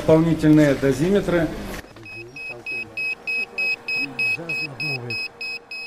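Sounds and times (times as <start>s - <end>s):
man speaking: 0.1s - 5.3s
radiation dosimeter alarm beeping: 1.9s - 5.8s.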